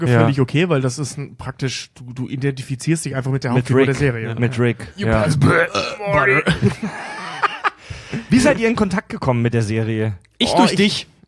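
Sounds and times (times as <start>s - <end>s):
speech: 0.0s - 7.1s, 8.2s - 11.2s
person burping mid-sentence: 5.1s - 6.6s
laughter: 6.2s - 8.5s.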